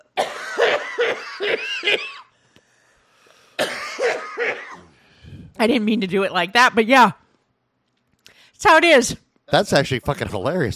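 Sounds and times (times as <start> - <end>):
harsh raspy coughing fit after a hit from a pipe: 0.0 - 2.3, 3.6 - 5.0
speech: 5.6 - 7.2, 8.6 - 10.7.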